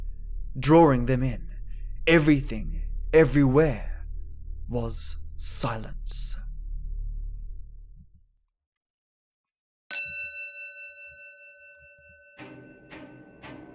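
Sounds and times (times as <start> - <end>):
low rumble: 0.0 - 8.3
speech: 0.6 - 1.5, 2.1 - 3.9, 4.7 - 6.4
hanging bell outside a pub ringing: 9.9 - 13.7.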